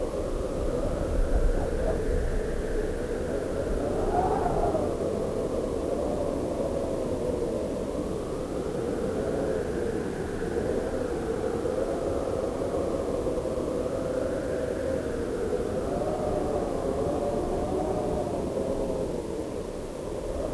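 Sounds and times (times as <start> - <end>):
mountain wind: 0.0 - 20.5.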